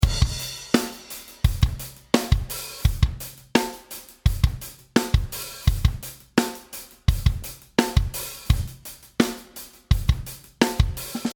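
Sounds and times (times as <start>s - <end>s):
American drumbeat composition: 0.0s - 11.3s.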